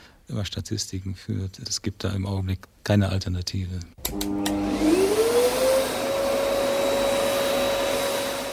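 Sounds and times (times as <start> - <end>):
speech: 0.3 - 5.0
vacuum cleaner starting up and running: 4.0 - 8.5.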